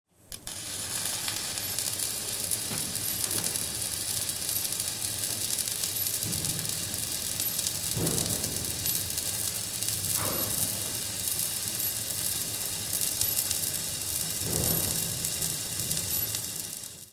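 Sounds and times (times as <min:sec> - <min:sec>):
welding machine: 0:00.2 - 0:17.1.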